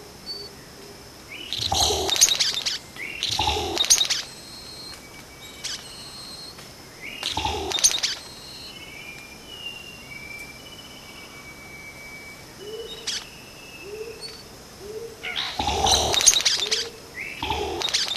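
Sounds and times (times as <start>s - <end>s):
Vogelkop bowerbird rough rasping calls: 1.4s - 4.9s, 7.2s - 8.4s, 14.9s - 18.1s
long thin whistles: 1.6s - 14.5s.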